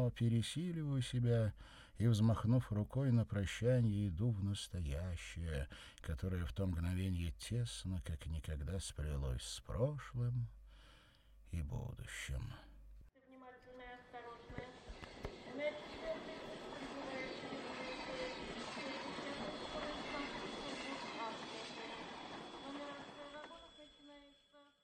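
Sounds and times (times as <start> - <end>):
speech: 0.0 - 10.6, 11.5 - 12.7
train rolling along the rails: 14.8 - 23.6.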